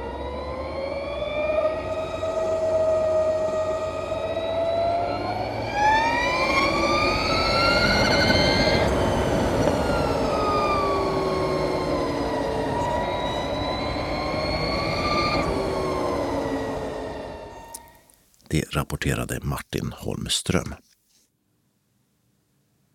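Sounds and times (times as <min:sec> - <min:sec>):
Harley-Davidson LiveWire electric motorcycle revving as throttle twists: 0:00.0 - 0:17.8
speech: 0:19.0 - 0:20.9.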